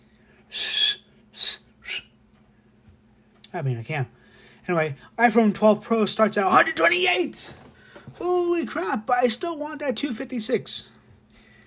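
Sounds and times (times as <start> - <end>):
attempted whistling: 0.5 - 2.2
speech: 3.5 - 7.6, 8.2 - 11.0.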